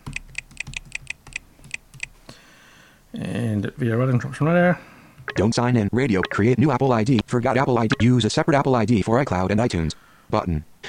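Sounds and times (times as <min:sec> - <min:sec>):
keystrokes on a computer keyboard typing a password: 0:00.0 - 0:02.2
speech: 0:03.1 - 0:10.8.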